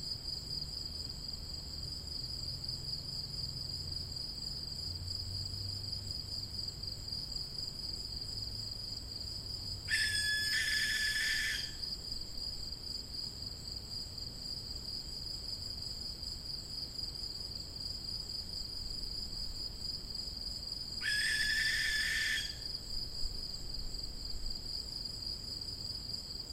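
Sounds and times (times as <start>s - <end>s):
high-pitched insect chorus: 0.1s - 26.5s
young barn owl hissing screech: 9.9s - 11.8s, 21.0s - 22.6s.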